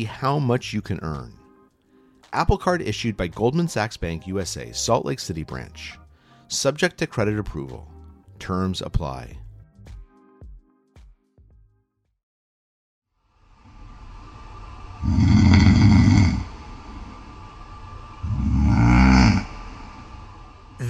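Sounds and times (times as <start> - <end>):
speech: 0.0 - 1.4, 2.3 - 9.4, 15.0 - 15.3
man snoring: 15.0 - 17.1, 18.2 - 20.1.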